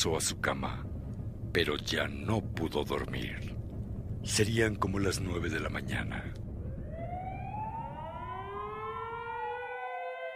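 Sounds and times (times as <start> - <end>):
speech: 0.0 - 0.9, 1.5 - 3.5, 4.2 - 6.4
low rumble of traffic: 0.0 - 9.4
ambulance siren wailing: 6.6 - 10.3.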